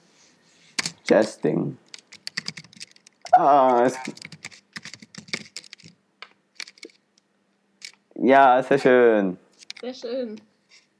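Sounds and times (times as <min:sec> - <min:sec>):
rapid typing on a computer keyboard: 0:00.8 - 0:01.0, 0:01.8 - 0:03.2, 0:03.9 - 0:06.0, 0:06.6 - 0:07.0
speech: 0:01.1 - 0:01.9, 0:03.4 - 0:04.3, 0:08.2 - 0:10.5.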